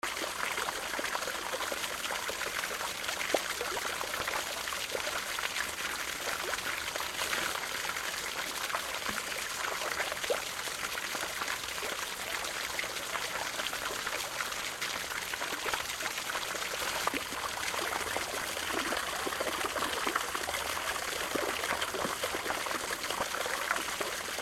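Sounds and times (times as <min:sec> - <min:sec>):
small waterfall with medium flow: 0:00.0 - 0:24.3.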